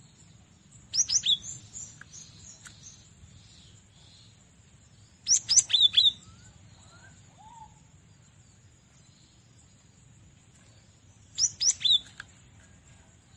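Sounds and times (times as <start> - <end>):
cinereous tit whistling descending phrases: 1.0 - 1.6, 5.3 - 6.5, 11.4 - 12.2.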